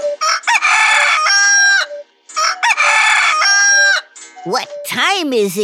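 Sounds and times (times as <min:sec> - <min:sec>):
rooster crowing: 0:00.2 - 0:04.1
speech: 0:05.3 - 0:05.6.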